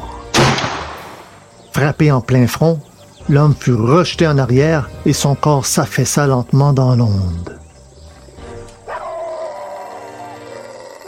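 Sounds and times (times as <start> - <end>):
speech: 1.8 - 7.6
two dogs barking and growling as they attack a young woman: 7.5 - 11.0
dog howling with steady pitch: 8.8 - 11.0.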